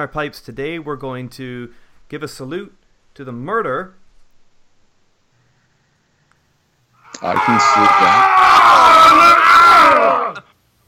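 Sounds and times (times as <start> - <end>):
speech: 0.0 - 4.0, 7.2 - 8.9
people screaming in pain: 7.0 - 10.5.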